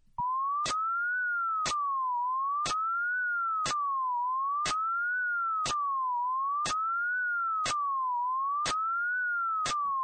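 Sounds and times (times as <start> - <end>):
pure whistle-like tone sliding up and down in pitch: 0.2 - 10.0.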